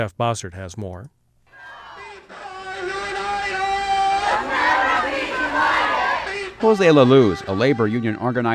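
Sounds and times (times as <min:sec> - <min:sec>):
speech: 0:00.0 - 0:01.2, 0:06.6 - 0:08.5
crowd of more than 200 people shouting at an immigrant rights rally: 0:01.5 - 0:07.7.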